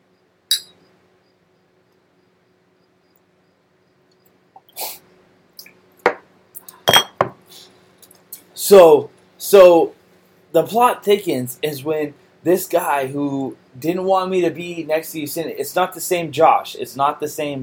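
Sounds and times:
glasses clinking together in a toast: 0:00.5 - 0:00.8, 0:06.9 - 0:07.4
speech: 0:08.7 - 0:17.6.

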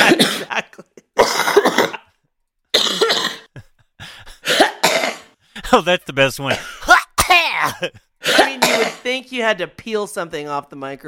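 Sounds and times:
coughing and throat clearing: 0:00.0 - 0:05.4, 0:06.5 - 0:09.0
speech: 0:05.7 - 0:06.8, 0:07.4 - 0:11.0.

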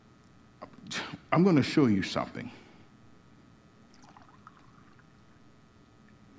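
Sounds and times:
steady noise: 0:00.0 - 0:06.3
speech: 0:01.3 - 0:02.6
water poured from a pitcher into a glass: 0:03.9 - 0:05.2.

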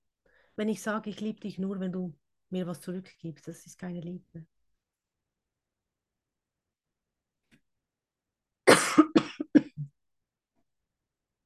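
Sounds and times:
speech: 0:00.6 - 0:04.5
person coughing: 0:08.7 - 0:09.9.

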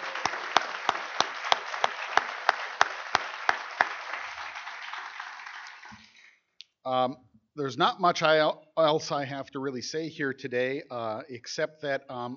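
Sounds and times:
audience applause: 0:00.0 - 0:06.2
speech: 0:06.8 - 0:12.3.

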